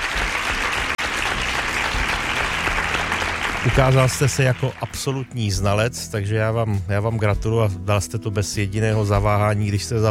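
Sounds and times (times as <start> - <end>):
crowd applause: 0.0 - 5.4
speech: 3.6 - 10.1.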